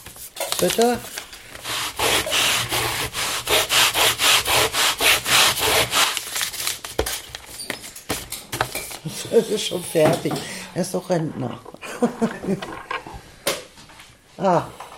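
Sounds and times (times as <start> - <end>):
speech: 0.6 - 1.2, 9.2 - 12.9, 14.4 - 14.8
sanding strokes on a small wooden star: 1.6 - 6.2
laughter: 11.8 - 12.9.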